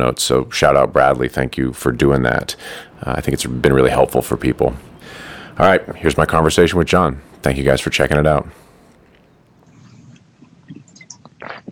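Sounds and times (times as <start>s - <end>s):
speech: 0.0s - 8.7s
two people sipping and swallowing drinks from bottles: 9.0s - 11.6s.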